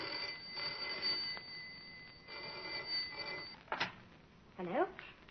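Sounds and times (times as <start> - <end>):
telephone ringing: 0.0 - 3.7.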